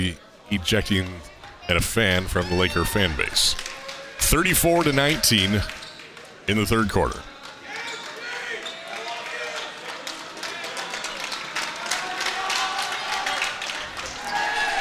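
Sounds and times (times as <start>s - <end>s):
speech: 0.0s - 3.6s, 4.2s - 5.8s, 6.5s - 7.3s
student section crowd cheering at a basketball game: 0.3s - 14.7s
crowd clapping at a basketball game: 7.3s - 14.4s.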